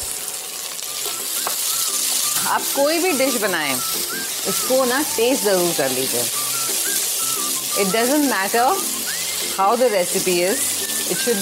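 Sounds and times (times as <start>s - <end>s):
sliced onions sautéing in a pan for chicken pulao: 0.0s - 11.3s
speech: 2.5s - 6.5s, 7.8s - 8.9s, 9.6s - 11.3s.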